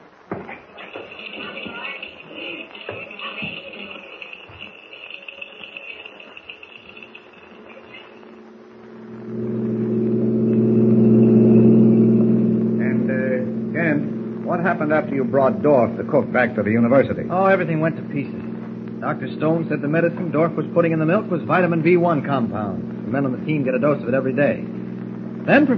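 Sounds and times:
car engine revving as the car pulls away: 8.6 - 23.8
speech: 14.8 - 18.4, 19.0 - 24.7, 25.5 - 25.7.

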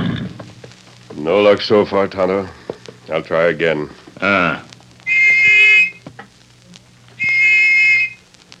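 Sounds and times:
speech: 1.3 - 4.7
small brass whistle blasts: 5.1 - 6.0, 7.2 - 8.2.

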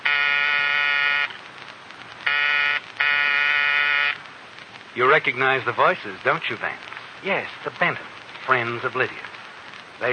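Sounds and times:
front door buzzer ringing: 0.0 - 1.3, 2.3 - 4.2
speech: 5.0 - 9.3, 10.0 - 10.1.

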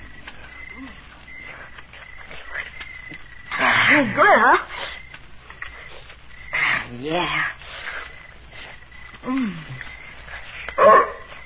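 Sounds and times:
low steady hiss: 0.0 - 11.4
speech: 3.9 - 4.7, 7.0 - 7.6, 9.2 - 9.9
big mutt dog giving a short sliding yelp: 10.8 - 11.3.

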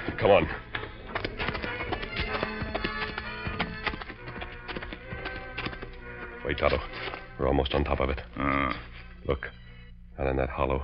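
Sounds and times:
several horses' hooves clip-clopping: 0.0 - 8.3
speech: 0.2 - 0.7, 6.5 - 9.6, 10.2 - 10.8.

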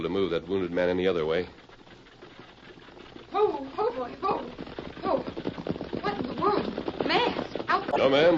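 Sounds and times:
speech: 0.0 - 1.6, 3.3 - 5.4, 6.1 - 8.3
horse hooves clip-clopping: 0.0 - 8.3
horse-drawn wagon rattling and knocking: 3.5 - 7.8.

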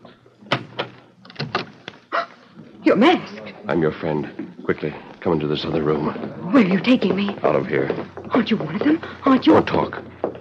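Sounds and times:
door being opened: 0.4 - 2.0
speech: 2.8 - 10.1.

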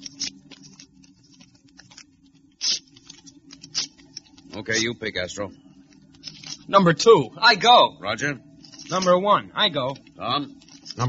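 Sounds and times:
paper slips being torn: 0.0 - 4.9
speech: 4.6 - 5.7, 6.7 - 11.0.

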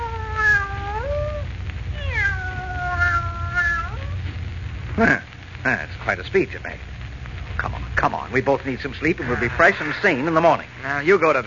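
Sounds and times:
cat meowing: 0.0 - 4.2
low steady rumble: 0.0 - 11.4
speech: 5.0 - 6.9, 7.6 - 11.4.

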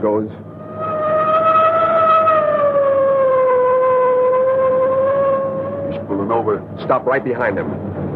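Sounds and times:
speech: 0.0 - 0.5, 6.1 - 8.0
car siren wailing while closing in on a truck: 0.4 - 6.4.

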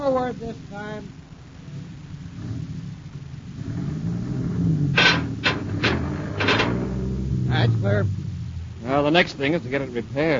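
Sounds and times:
heavy truck engine rumbling: 0.0 - 10.3
speech: 0.1 - 1.9, 7.6 - 8.2, 8.8 - 10.3
metal beam dragged out with rasping scrapes: 4.9 - 7.3.

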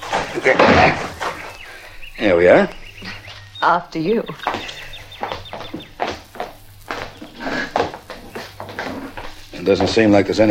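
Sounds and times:
door of a deserted-looking house or lodge being kicked in: 0.0 - 1.4
speech: 0.4 - 1.1, 2.2 - 4.6, 9.6 - 10.4.

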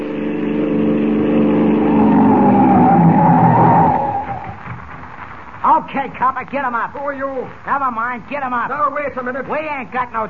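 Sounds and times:
police car roaring up at a crossroads: 0.0 - 4.9
police car tires screeching while skidding to a stop: 0.0 - 5.2
speech: 6.3 - 10.2.

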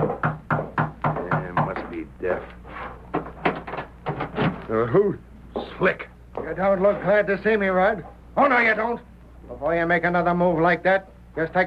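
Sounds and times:
sharp knocks on the door of a home at night: 0.0 - 2.0, 3.1 - 4.6
speech: 4.8 - 11.6.

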